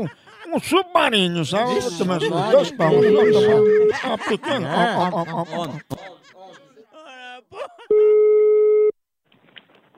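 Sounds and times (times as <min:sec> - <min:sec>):
speech: 0:00.0 - 0:06.4
people chuckling and laughing: 0:00.0 - 0:08.0
telephone call tone while calling someone: 0:07.9 - 0:09.0.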